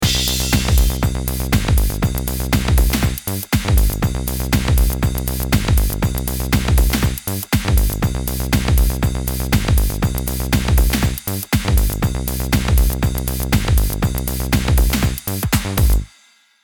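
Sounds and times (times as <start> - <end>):
brush bass: 0.0 - 16.1.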